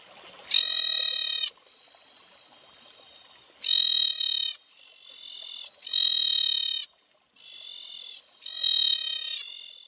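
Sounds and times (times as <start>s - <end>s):
screaming tree frog calling in harsh buzzy bursts: 0.5s - 1.6s, 3.6s - 9.8s.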